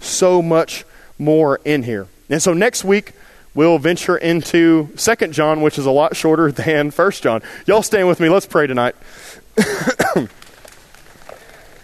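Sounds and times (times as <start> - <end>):
speech: 0.1 - 10.4
coughing and throat clearing: 9.6 - 10.4.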